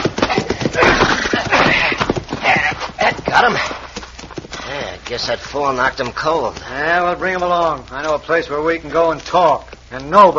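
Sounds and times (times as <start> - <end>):
louder scuffling rush: 0.0 - 7.8
horse hooves clip-clopping: 0.0 - 10.3
speech: 5.1 - 10.3.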